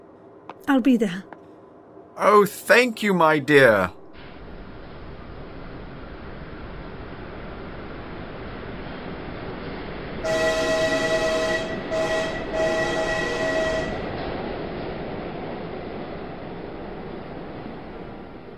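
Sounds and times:
train rumbling: 0.0s - 18.5s
speech: 0.7s - 1.4s, 2.2s - 4.0s
train whistle: 10.2s - 14.2s.

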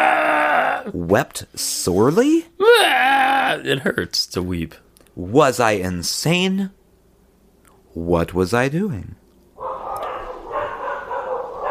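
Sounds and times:
speech: 0.9s - 6.8s, 8.0s - 9.2s
pack of dogs barking and baying: 9.6s - 11.6s.

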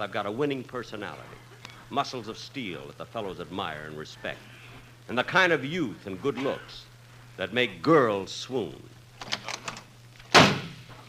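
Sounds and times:
speech: 0.0s - 9.4s
faint clicks and rattles: 9.2s - 10.3s
door slamming shut: 10.3s - 10.9s.

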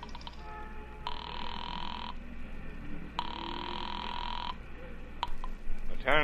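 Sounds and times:
long electronic telephone rings of a call ringing through: 0.0s - 2.2s, 3.2s - 4.6s
low steady hum: 0.0s - 6.2s.

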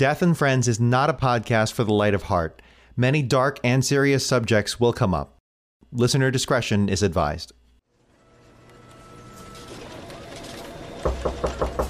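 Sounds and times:
speech: 0.0s - 7.6s
knocking on a door: 11.1s - 11.8s.

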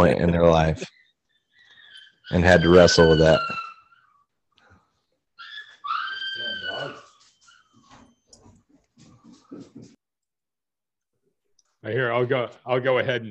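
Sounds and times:
speech: 0.0s - 1.0s, 2.3s - 3.6s, 11.8s - 13.2s
excited dogs yelping and whining: 0.9s - 9.8s
excited dogs barking: 2.0s - 4.1s, 5.4s - 7.8s.

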